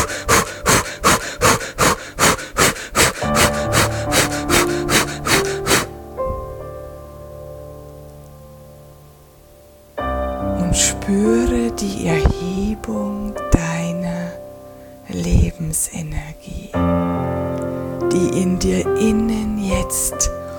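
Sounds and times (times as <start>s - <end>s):
rapid in-and-out breathing during a breathing exercise with arms raised: 0.0s - 6.5s
sustained music tones: 0.0s - 20.5s.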